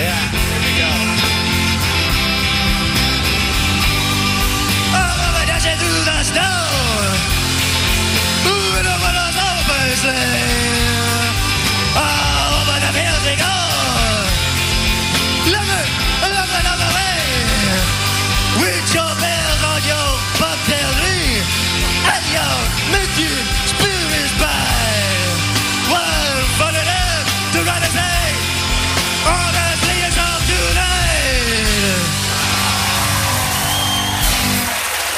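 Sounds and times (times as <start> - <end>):
live rock band playing on tour: 0.0 - 35.1
raw strained man's lead vocal shouting and wailing: 4.9 - 7.3, 8.4 - 14.6, 15.4 - 28.5, 29.2 - 32.2.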